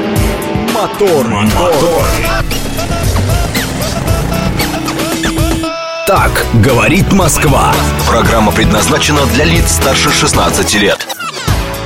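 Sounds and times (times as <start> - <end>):
music: 0.0 - 11.8
speech: 0.8 - 2.6, 6.1 - 11.1
car engine revving and rumbling: 1.5 - 8.1.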